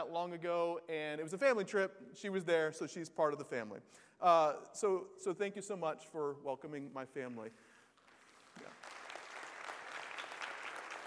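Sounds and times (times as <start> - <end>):
speech: 0.0 - 7.7, 8.6 - 9.0
audience clapping: 7.9 - 11.0.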